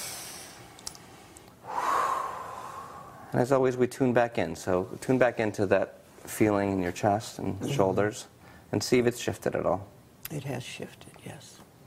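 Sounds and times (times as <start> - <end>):
deep breath taken during guided relaxation: 0.0 - 3.3
speech: 3.3 - 11.5.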